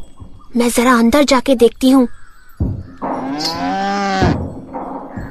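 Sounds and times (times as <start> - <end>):
speech: 0.6 - 2.2, 3.4 - 3.6
cow with small bells tied around its neck mooing: 3.0 - 4.5.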